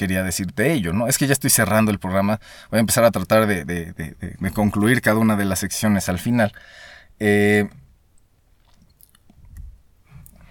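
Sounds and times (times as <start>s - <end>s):
speech: 0.0s - 7.8s
small wet mouth clicks while drinking water: 8.2s - 10.4s
person gulping and swallowing water: 8.5s - 9.6s.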